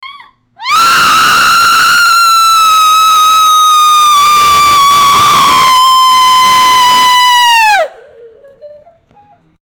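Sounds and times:
elderly person screaming when falling: 0.6 - 8.0.

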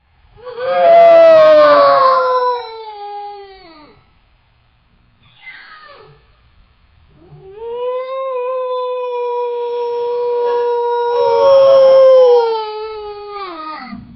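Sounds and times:
hyena howling: 0.4 - 3.5, 7.2 - 14.0.

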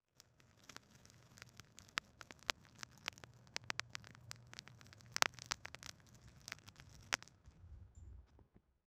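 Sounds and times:
pumpkin breaking: 0.2 - 7.3.

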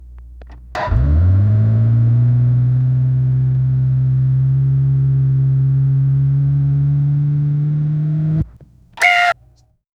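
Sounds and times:
performance engine accelerating aggressively: 0.8 - 8.5.

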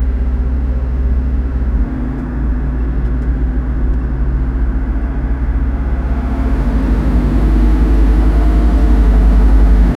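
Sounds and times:
intimidating car engine: 0.0 - 9.9.

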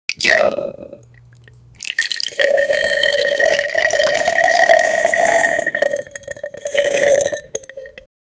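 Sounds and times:
person chewing: 0.5 - 8.0
slurping noodles: 1.8 - 8.1.

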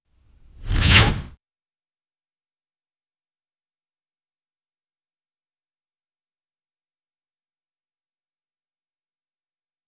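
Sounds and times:
sharp arrow whoosh: 0.4 - 1.4.

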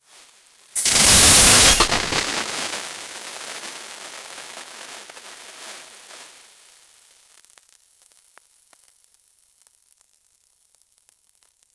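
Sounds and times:
confetti burst into the air: 0.8 - 2.9.

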